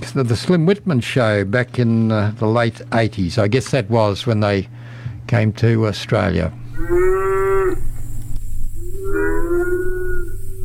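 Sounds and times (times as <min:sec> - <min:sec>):
speech: 0:00.1 - 0:07.8
low rumbling background: 0:06.5 - 0:10.6
cattle mooing on a cattle station: 0:06.8 - 0:08.0, 0:08.8 - 0:10.6.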